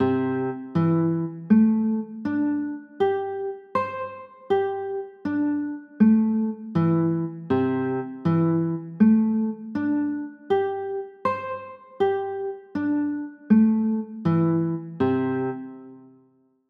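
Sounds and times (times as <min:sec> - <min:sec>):
C six nine chords: 0:00.0 - 0:16.1.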